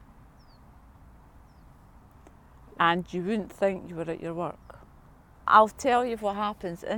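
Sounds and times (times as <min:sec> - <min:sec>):
low steady outdoor rumble: 0:00.0 - 0:06.9
faint bird chirps with quick downward whistle: 0:00.3 - 0:00.7, 0:01.4 - 0:01.8
speech: 0:02.8 - 0:04.6, 0:05.5 - 0:06.9.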